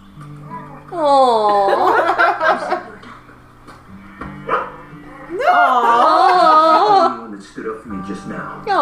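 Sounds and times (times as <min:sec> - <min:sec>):
speech: 0:01.0 - 0:01.6
laughter: 0:01.3 - 0:03.1, 0:05.4 - 0:07.3
dog barking and yipping: 0:04.4 - 0:04.8.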